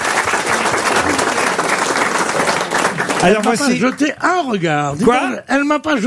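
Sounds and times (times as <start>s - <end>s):
audience applause: 0.0s - 4.1s
speech: 3.2s - 6.0s.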